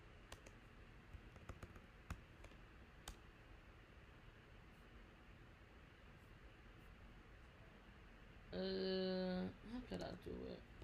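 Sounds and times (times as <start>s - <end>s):
typing on a computer keyboard: 0.3s - 3.2s
speech: 8.6s - 9.2s, 9.9s - 10.7s.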